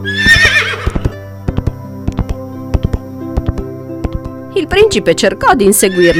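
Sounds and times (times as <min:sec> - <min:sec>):
white horse whinnying: 0:00.0 - 0:01.2, 0:05.9 - 0:06.1
white horse hooves galloping into the woods: 0:00.0 - 0:05.0
speech: 0:04.6 - 0:06.1.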